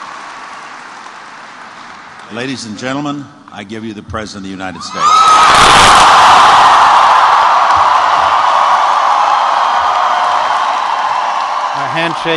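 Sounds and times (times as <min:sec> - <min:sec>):
large crowd of supporters cheering: 0:00.0 - 0:02.0, 0:04.9 - 0:12.3
crowd applause: 0:00.0 - 0:02.4, 0:05.5 - 0:12.3
speech: 0:02.3 - 0:06.7, 0:12.0 - 0:12.3.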